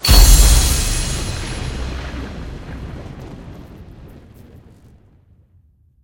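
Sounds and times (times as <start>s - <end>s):
big win hit jingle: 0.0s - 2.5s.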